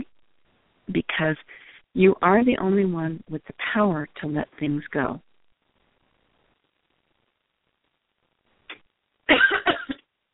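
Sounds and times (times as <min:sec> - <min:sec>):
speech: 0:00.9 - 0:05.3
person coughing from a dry throat: 0:09.3 - 0:10.0.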